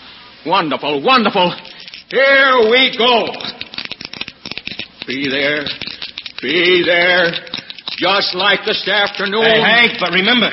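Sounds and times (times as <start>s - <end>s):
speech: 0.4s - 3.5s, 5.1s - 10.5s
pair of dice shaken in a hand and rolled: 1.4s - 10.5s
person calling out: 9.2s - 10.1s.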